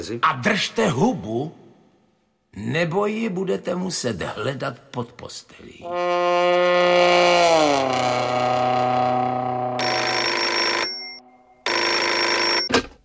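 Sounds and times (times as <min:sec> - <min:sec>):
speech: 0:00.0 - 0:01.6, 0:02.6 - 0:09.4
telephone bell ringing: 0:09.8 - 0:12.7.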